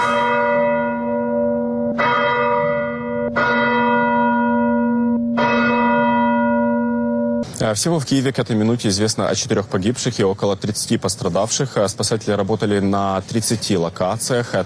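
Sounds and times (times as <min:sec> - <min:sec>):
large church bells tolling: 0:00.0 - 0:07.5
speech: 0:07.7 - 0:14.6.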